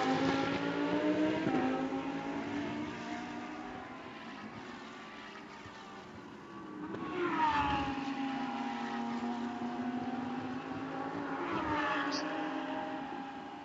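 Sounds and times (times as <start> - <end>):
high-revving race car engines whining past at speed off a high-speed turn: 0.0 - 13.6.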